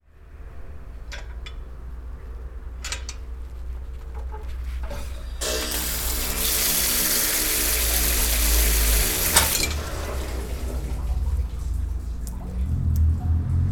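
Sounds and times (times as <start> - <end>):
public water pump in Sergiyev Posad: 4.1 - 13.6.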